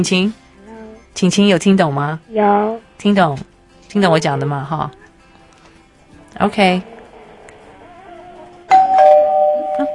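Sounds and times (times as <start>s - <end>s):
speech: 0.0s - 0.4s, 1.2s - 5.0s, 6.4s - 6.9s
doorbell ding-dong chime: 8.7s - 9.9s.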